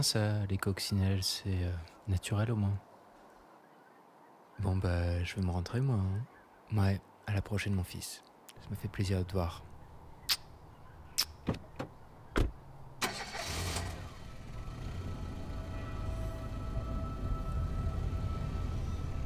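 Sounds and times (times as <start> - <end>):
speech: 0.0 - 2.9, 4.6 - 9.7
car doors clicking and thumping: 11.4 - 12.6
car engine cranking, starting and running: 11.5 - 19.2.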